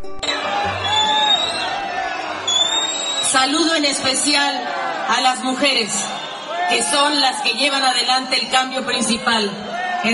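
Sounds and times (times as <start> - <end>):
sharp whistles from a protesting crowd: 0.2 - 1.8, 2.5 - 3.6, 5.9 - 6.6
large crowd booing in protest at an envoy reading a letter: 0.2 - 10.1
speech: 3.4 - 10.1.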